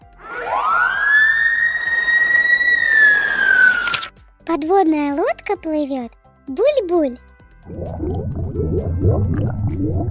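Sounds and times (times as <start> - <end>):
fire engine siren wailing: 0.0 - 4.0
speech: 4.5 - 10.0.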